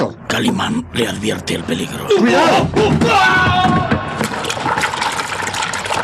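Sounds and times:
speech: 0.4 - 4.0
water churning and bubbling: 4.2 - 6.0.

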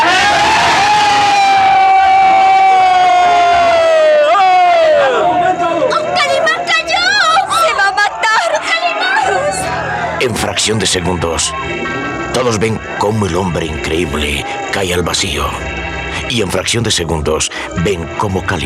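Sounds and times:
crowd of sailors screaming in unison: 0.0 - 10.3
scattered shouts and cries of men: 0.0 - 18.6
speech: 10.7 - 18.6.

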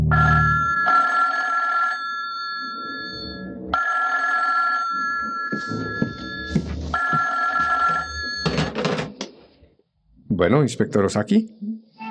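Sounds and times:
telephone bell ringing in a hotel room: 0.1 - 8.7
speech: 10.5 - 11.6.

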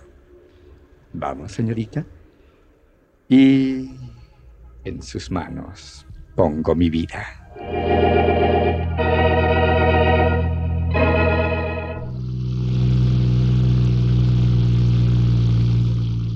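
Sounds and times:
speech: 1.2 - 2.2, 3.3 - 4.1, 4.8 - 8.3
luxury car engine revving while driving uphill along an avenue: 7.8 - 16.3.

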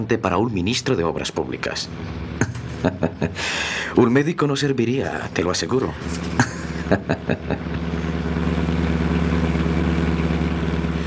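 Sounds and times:
speech: 0.0 - 7.9
car engine humming driving along a highway: 0.0 - 11.0
road rumble: 0.0 - 11.0
clattering bumps: 1.7 - 3.2
laughter: 2.4 - 4.0, 6.0 - 8.1.

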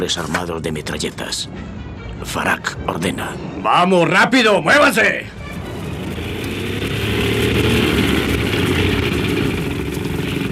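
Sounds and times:
speech: 0.0 - 5.4
motorboat engine roaring: 5.3 - 10.5.

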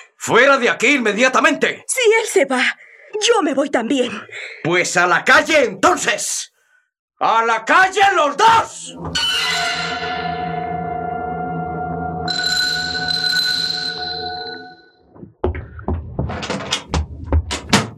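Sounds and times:
speech: 0.2 - 6.5, 7.2 - 10.4
long ringing chime-like tone: 9.2 - 15.0
uneven knocks and bumps: 15.1 - 17.9
door closing with a brief thud: 15.4 - 17.9.

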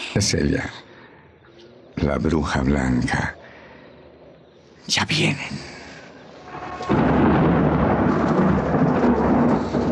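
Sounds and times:
speech: 0.1 - 0.9, 2.0 - 3.4, 4.8 - 5.8
deep roll of thunder from an approaching storm at night: 6.4 - 9.9.

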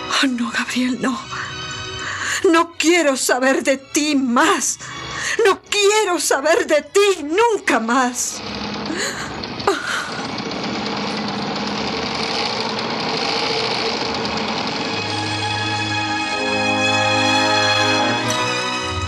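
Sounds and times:
speech: 0.2 - 1.4, 2.4 - 8.6
old sewing machine running with rattling mechanical whir: 7.2 - 19.0.

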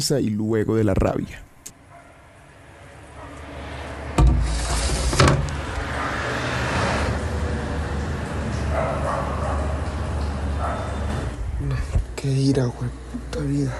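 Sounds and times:
speech: 0.0 - 1.5, 12.2 - 13.7
steady rumble of traffic: 1.7 - 13.7
dog barking: 1.9 - 2.3, 3.2 - 3.5, 5.9 - 6.3, 8.7 - 9.9, 10.6 - 11.1, 13.6 - 13.7.

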